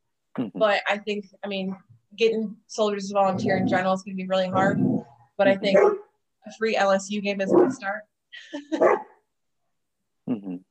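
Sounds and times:
speech: 0:00.4 - 0:09.1
dogs barking: 0:05.6 - 0:06.1, 0:07.5 - 0:07.9, 0:08.8 - 0:09.1.

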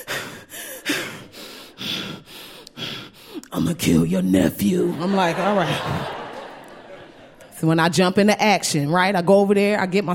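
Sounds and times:
person imitating heavy exasperated breathing on the phone: 0:00.0 - 0:03.5
speech: 0:03.5 - 0:06.2, 0:07.6 - 0:10.1
laughter: 0:04.8 - 0:07.7.

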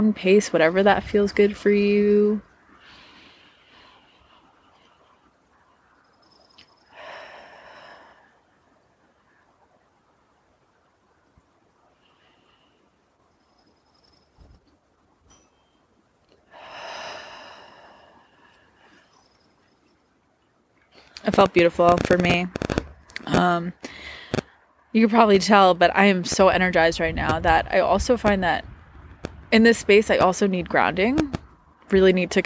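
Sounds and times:
speech: 0:00.0 - 0:02.5, 0:21.3 - 0:22.6, 0:23.3 - 0:24.1, 0:24.9 - 0:28.7, 0:29.5 - 0:31.2, 0:31.9 - 0:32.4
deep breaths in through the nose and out through the mouth: 0:02.7 - 0:05.3, 0:06.8 - 0:08.5, 0:12.0 - 0:13.0, 0:16.4 - 0:19.4, 0:23.8 - 0:24.7.

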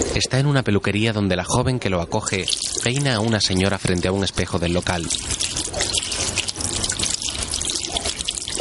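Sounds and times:
speech: 0:00.2 - 0:05.6
tap water running into a hair-washing basin in a hair salon: 0:02.2 - 0:08.5.

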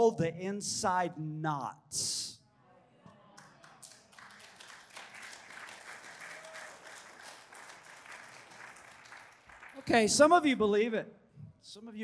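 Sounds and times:
speech: 0:00.0 - 0:02.3, 0:09.8 - 0:12.0
congregation applause: 0:03.4 - 0:10.0.

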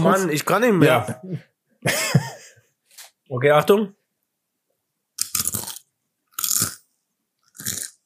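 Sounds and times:
speech: 0:00.0 - 0:02.3, 0:03.3 - 0:04.0
crunching bites of brittle crackling: 0:05.2 - 0:06.8, 0:07.4 - 0:08.0.

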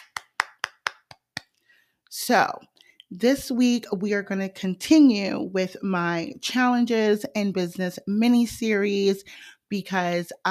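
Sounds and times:
one person clapping hands: 0:00.0 - 0:01.6
speech: 0:02.2 - 0:10.5.

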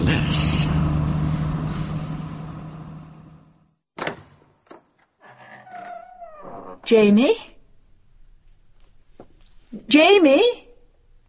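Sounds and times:
car being driven, engine and road rumble: 0:00.0 - 0:03.6
speech: 0:06.9 - 0:07.5, 0:09.7 - 0:10.6.

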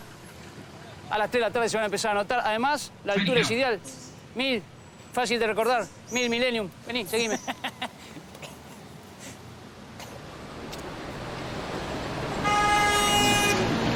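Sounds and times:
speech: 0:01.1 - 0:07.8
laughter: 0:03.2 - 0:03.6
car horn blast: 0:12.4 - 0:13.7.

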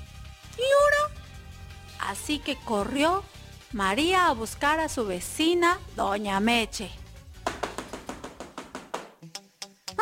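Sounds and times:
speech: 0:02.1 - 0:07.0
neighbor pounding hard and roughly on a door: 0:07.4 - 0:09.1.

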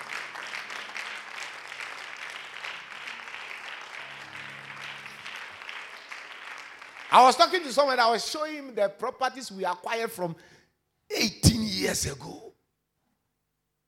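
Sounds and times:
audience clapping: 0:00.0 - 0:08.6
speech: 0:07.1 - 0:12.4.

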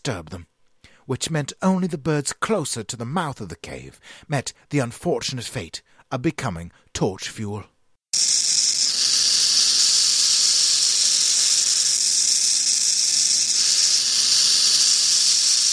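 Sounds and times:
speech: 0:00.0 - 0:00.5, 0:01.1 - 0:08.6
burrowing owl defensive hissing: 0:08.2 - 0:15.7.

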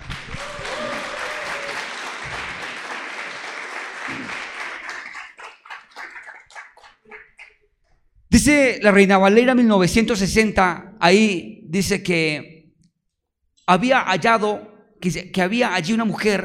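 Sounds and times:
crowd applauding: 0:00.0 - 0:07.6
speech: 0:08.4 - 0:12.5, 0:13.7 - 0:16.4.

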